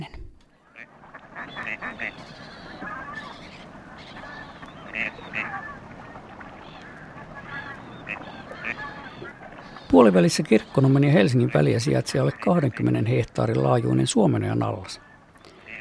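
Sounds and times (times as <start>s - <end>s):
steady wetland hiss: 0.0s - 15.7s
gadwall ducks calling at the Suomenoja basin in Finland: 0.6s - 13.0s, 14.9s - 15.7s
speech: 1.9s - 2.6s, 9.9s - 15.1s.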